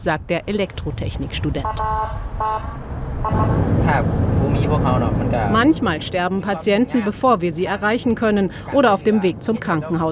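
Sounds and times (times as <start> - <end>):
speech: 0.0 - 10.1
steady rumble of SUV and pickup engines in busy night road traffic: 0.0 - 10.1
car horn toots: 1.6 - 3.7.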